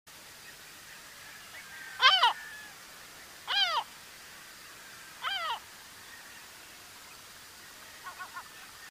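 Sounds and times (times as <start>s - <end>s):
yellow-legged gull calling: 1.8s - 2.8s, 3.5s - 3.9s, 5.2s - 5.6s, 8.0s - 8.8s.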